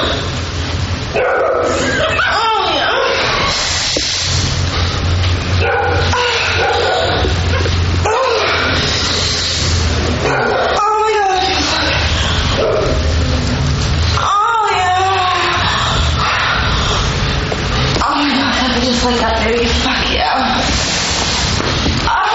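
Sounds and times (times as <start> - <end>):
low steady hum: 0.0 - 22.3
dog barking: 1.2 - 2.0, 5.6 - 8.6, 10.2 - 10.8
laughter: 1.7 - 3.5.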